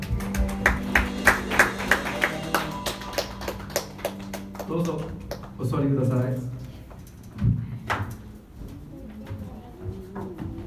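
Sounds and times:
audience clapping in thanks in steady rhythm: 0:00.0 - 0:05.8
speech: 0:04.8 - 0:06.6.

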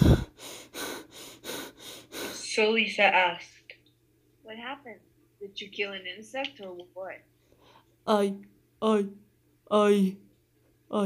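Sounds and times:
man breathing heavily and laboriously: 0:00.0 - 0:02.4
speech: 0:02.6 - 0:03.5, 0:04.5 - 0:07.3, 0:08.0 - 0:10.3.

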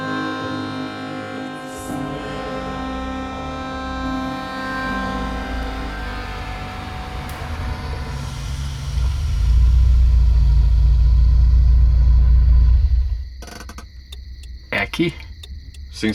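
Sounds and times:
car engine idling: 0:00.0 - 0:16.1
sharp mechanical clicks and knocks: 0:13.4 - 0:16.1
speech: 0:15.0 - 0:15.2.

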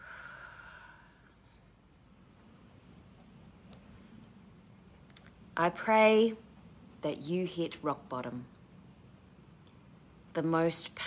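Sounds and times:
slow deep breathing in and out: 0:00.0 - 0:01.9
speech: 0:05.6 - 0:06.4, 0:07.0 - 0:08.5, 0:10.4 - 0:11.0.

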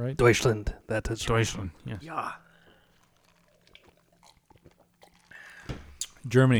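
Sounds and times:
speech: 0:00.0 - 0:02.5, 0:06.2 - 0:06.5
person sipping and gulping fizzy water: 0:02.4 - 0:06.3
soft liquid trickles: 0:02.5 - 0:06.2.

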